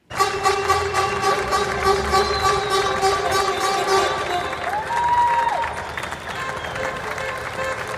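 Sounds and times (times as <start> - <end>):
large crowd clapping and cheering for health care workers: 0.0 - 7.9
whistles: 2.1 - 3.8, 5.0 - 7.3.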